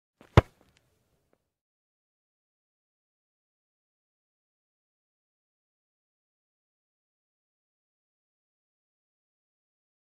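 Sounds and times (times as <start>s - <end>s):
ball being kicked: 0.2s - 0.6s.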